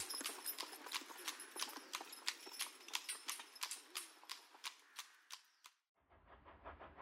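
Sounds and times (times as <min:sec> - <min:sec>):
horse-drawn cab hooves clopping on a hard road: 0:00.0 - 0:05.6
low rumble: 0:06.0 - 0:07.0.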